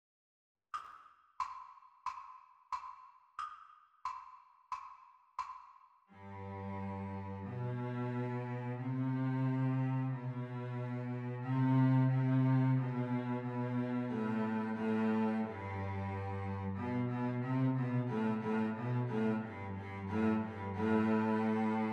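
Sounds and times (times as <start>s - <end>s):
cello duet playalong: 6.2s - 21.9s.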